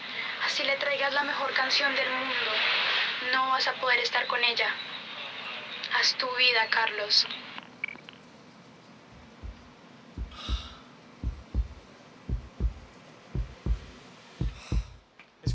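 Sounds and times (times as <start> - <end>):
speech: 0.5 - 5.0, 6.0 - 7.5
heartbeat thumping in low double beats: 9.2 - 15.5.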